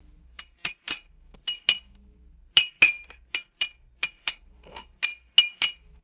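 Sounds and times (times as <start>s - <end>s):
bright resonant glass bottle clinks: 0.4s - 1.9s, 2.6s - 5.8s.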